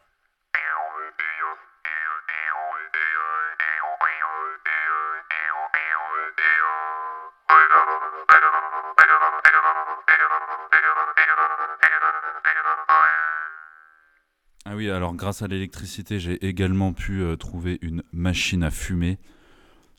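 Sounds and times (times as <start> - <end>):
jaw harp twanging: 0.6 - 13.8
speech: 1.1 - 5.4, 14.7 - 19.4.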